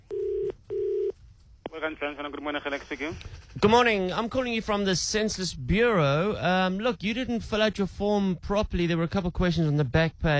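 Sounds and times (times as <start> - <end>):
telephone dialing tones: 0.0 - 1.1
speech: 1.8 - 10.3.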